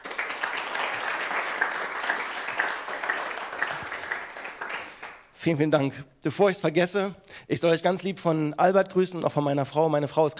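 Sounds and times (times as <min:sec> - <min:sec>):
audience applause: 0:00.0 - 0:05.2
speech: 0:05.4 - 0:10.3.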